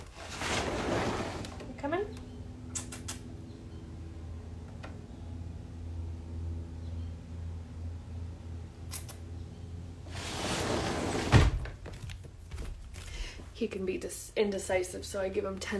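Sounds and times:
steady low hum: 0.3 - 11.6
door swinging shut: 10.8 - 11.8
speech: 13.6 - 15.7.

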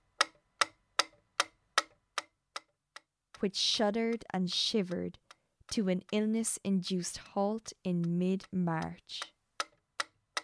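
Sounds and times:
clock ticking: 0.0 - 10.4
speech: 3.4 - 9.4.

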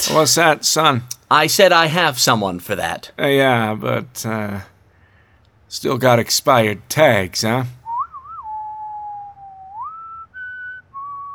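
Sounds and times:
speech: 0.1 - 4.7, 5.7 - 7.8
person whistling a short wavering tune: 7.8 - 11.3.

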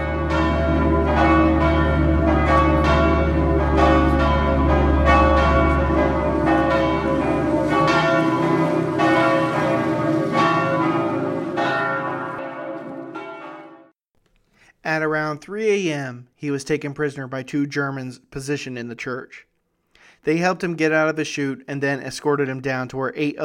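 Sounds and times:
church bells pealing: 0.0 - 13.9
speech: 15.4 - 19.5, 20.2 - 23.4.

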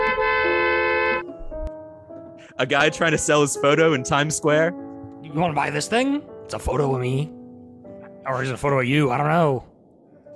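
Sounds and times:
car horn honking: 0.0 - 1.3
speech: 2.6 - 7.4, 8.2 - 9.7.

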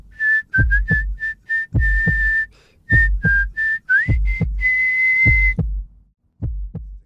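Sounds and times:
person whistling a bright tune: 0.1 - 5.7
rhythmic low thumping beat: 0.4 - 7.0.

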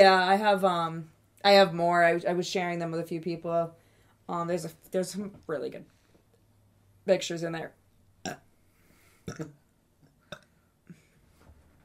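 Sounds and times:
speech: 0.0 - 6.0, 7.1 - 8.4, 9.3 - 9.6
small weak burp: 8.2 - 8.6, 9.2 - 9.6, 10.2 - 11.1.

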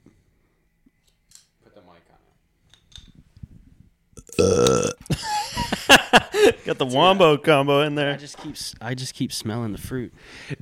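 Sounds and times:
loud burp: 4.2 - 5.1
speech: 4.4 - 4.7, 6.6 - 10.6
laughter: 5.1 - 6.9.

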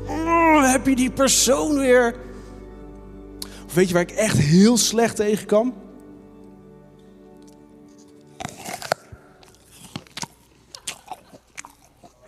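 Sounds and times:
speech: 0.7 - 2.3, 3.7 - 5.8
person biting and chewing an apple: 8.2 - 12.2.

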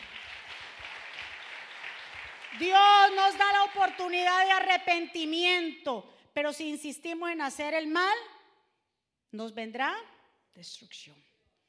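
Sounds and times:
audience applauding: 0.0 - 4.2
speech: 2.5 - 8.3, 9.3 - 11.3.

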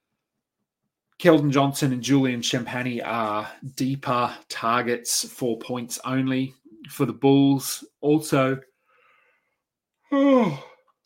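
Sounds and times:
speech: 1.2 - 8.7, 10.1 - 10.7
man yawning: 10.1 - 10.9.

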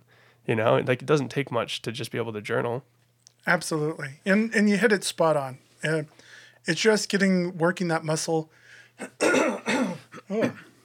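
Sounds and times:
speech: 0.5 - 9.5, 10.3 - 10.7
person clearing throat with raspy gravelly bursts: 9.0 - 10.8.

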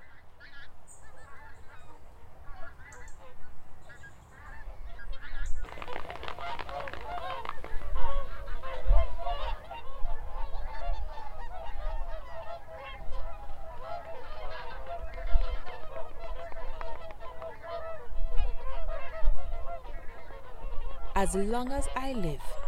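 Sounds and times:
large flock of pink-footed geese honking: 0.0 - 22.6
speech: 21.2 - 22.6.

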